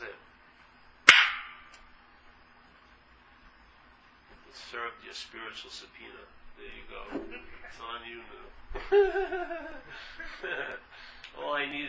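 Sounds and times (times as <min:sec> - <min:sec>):
sharp hand slap: 0:01.1 - 0:01.7
speech: 0:04.6 - 0:11.8
laughter: 0:07.0 - 0:07.9, 0:08.7 - 0:11.1.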